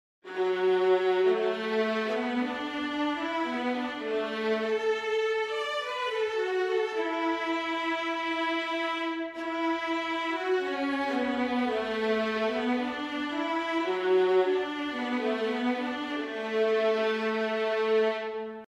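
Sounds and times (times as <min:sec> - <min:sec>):
viola solo: 0:00.3 - 0:18.6.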